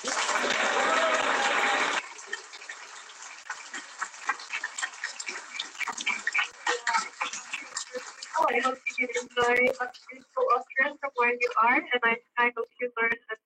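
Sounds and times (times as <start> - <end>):
audience applause: 0.0 - 9.6
speech: 11.3 - 13.2.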